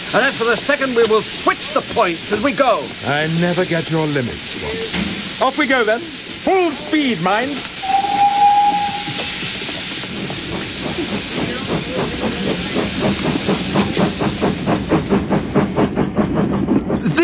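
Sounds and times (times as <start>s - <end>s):
steam locomotive chuffing as it starts off: 0.0s - 17.2s
speech: 0.1s - 8.0s
steam locomotive whistle: 7.8s - 9.7s.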